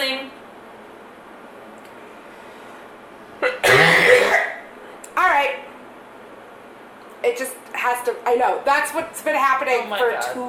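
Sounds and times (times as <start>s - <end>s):
person coughing from allergies: 3.4s - 4.6s
speech: 7.3s - 10.4s.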